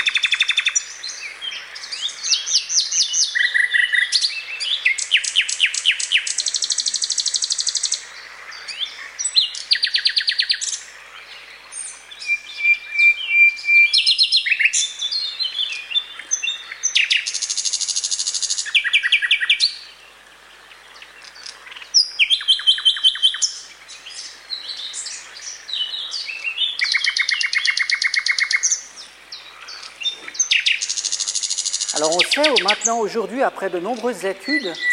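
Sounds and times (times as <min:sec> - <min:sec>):
common nightingale singing: 0:00.0 - 0:20.1, 0:20.8 - 0:34.9
speech: 0:32.0 - 0:34.9.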